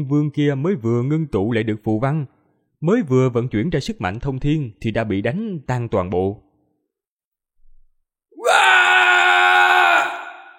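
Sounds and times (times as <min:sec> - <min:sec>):
speech: 0:00.0 - 0:06.5
man crying out loudly in pain after being struck down in a fight: 0:08.4 - 0:10.5.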